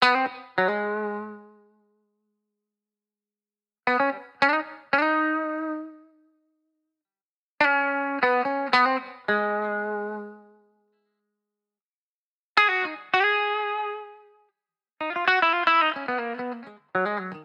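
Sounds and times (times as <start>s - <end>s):
70s guitar in key G#: 0.0s - 2.1s, 3.8s - 6.5s, 7.6s - 11.2s, 12.6s - 17.4s.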